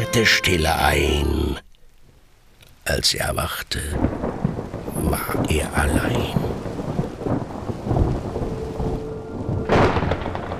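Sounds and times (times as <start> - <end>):
rain hissing: 0.0 - 10.5
speech: 0.1 - 1.7, 2.9 - 4.1, 5.1 - 6.4
thunder rumbling: 4.0 - 10.5.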